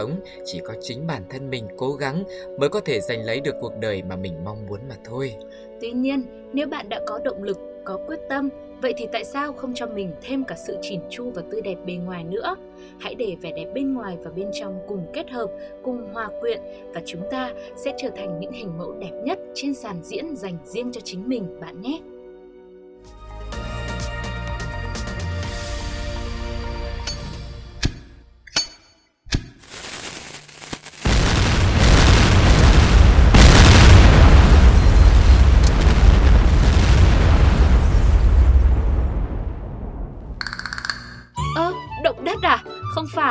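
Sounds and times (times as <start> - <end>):
speech: 0.0 - 22.2
massive blast of firecrackers going off at once: 29.6 - 40.4.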